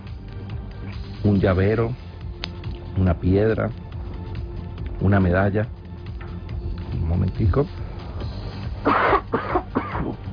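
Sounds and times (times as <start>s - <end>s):
speech: 1.2s - 2.0s, 3.0s - 3.8s, 5.0s - 5.8s, 7.1s - 7.8s
person coughing: 8.8s - 10.2s.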